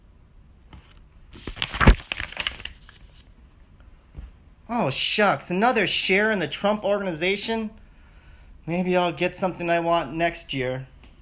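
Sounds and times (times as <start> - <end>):
gift wrapping paper ripping and crinkling: 1.4 - 3.3
speech: 4.7 - 7.8, 8.7 - 10.9.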